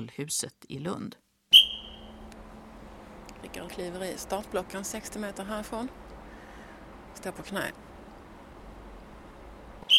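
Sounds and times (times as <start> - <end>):
speech: 0.0 - 1.3, 3.4 - 6.1, 7.2 - 7.9
sharp shrill starting whistle for a sprinter in a sports hall in Lund Sweden: 1.5 - 2.2.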